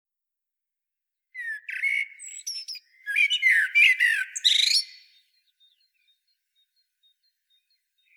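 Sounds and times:
common blackbird Turdus merula song: 0:01.4 - 0:08.1.

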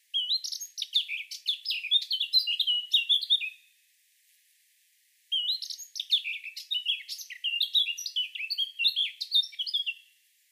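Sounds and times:
Eurasian blackcap Sylvia atricapilla warbling song: 0:00.1 - 0:03.6, 0:05.3 - 0:10.1.

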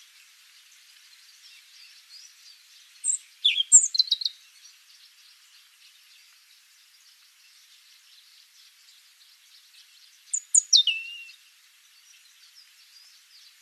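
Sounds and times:
European robin Erithacus rubecula singing thin sliding whistled notes: 0:03.0 - 0:04.4, 0:10.3 - 0:11.4.

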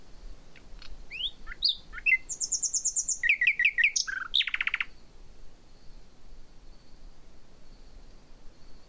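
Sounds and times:
common nightingale Luscinia megarhynchos song: 0:00.0 - 0:08.8.

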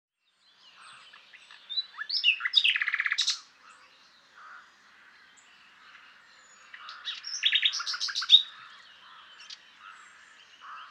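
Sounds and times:
common nightingale Luscinia megarhynchos song with trills: 0:00.2 - 0:10.8.

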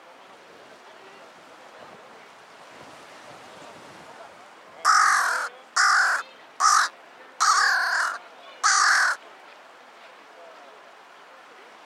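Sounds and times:
Carrion Crow Corvus corone cawing: 0:04.9 - 0:09.2.

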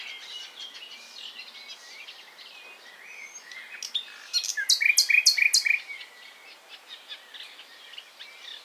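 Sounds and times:
common nightingale singing: 0:00.0 - 0:08.6.

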